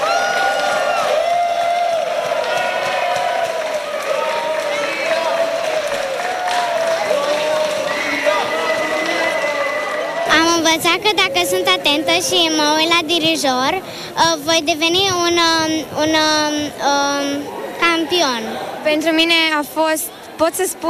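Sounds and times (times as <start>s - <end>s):
crowd cheering at arrival: 0.0s - 12.8s
speech: 10.7s - 20.8s.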